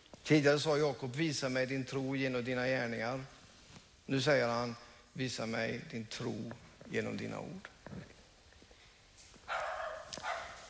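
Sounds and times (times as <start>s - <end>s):
speech: 0.3s - 3.4s, 4.1s - 8.1s
dog barking: 9.5s - 10.6s.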